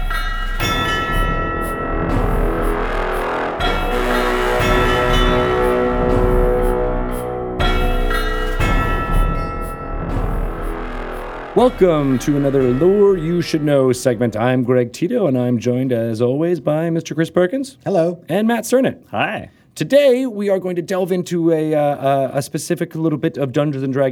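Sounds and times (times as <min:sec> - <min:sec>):
bright ringing chiming bells in a segment jingle: 0:00.0 - 0:13.8
sustained instrumental backing music: 0:00.0 - 0:14.1
speech: 0:11.6 - 0:24.1.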